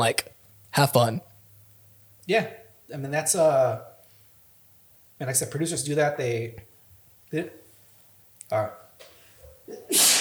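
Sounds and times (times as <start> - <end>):
speech: 0.0 - 1.3, 2.3 - 3.9, 5.2 - 6.7, 7.3 - 7.6, 8.5 - 8.8
sneeze: 9.7 - 10.2.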